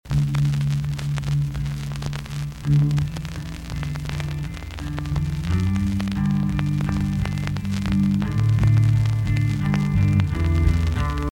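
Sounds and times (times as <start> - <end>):
unprocessed vinyl record noise: 0.0 - 11.2.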